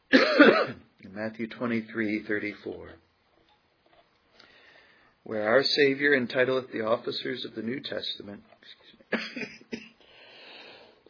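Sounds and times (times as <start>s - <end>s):
low steady noise: 0.0s - 11.0s
person coughing: 0.1s - 0.9s, 9.1s - 10.0s
speech: 0.4s - 3.0s, 5.2s - 9.6s.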